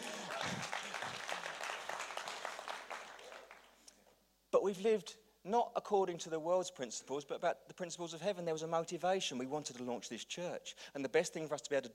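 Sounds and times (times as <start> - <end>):
laughter: 0.0 - 1.4
crowd applauding: 0.0 - 3.8
speech: 4.6 - 11.9.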